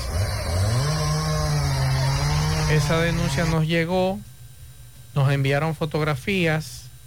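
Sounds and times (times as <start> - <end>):
chainsaw cutting trees during renovation work in a park in Santiago: 0.0 - 3.6
speech: 2.7 - 4.3, 5.2 - 6.9.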